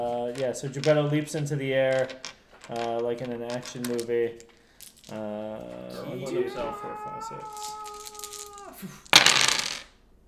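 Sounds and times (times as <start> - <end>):
dice clattering and tumbling across a tabletop: 0.0 - 5.8, 7.3 - 10.0
speech: 0.3 - 4.5, 5.1 - 7.8, 8.8 - 9.0
person holding a long dramatic tone: 5.8 - 9.1.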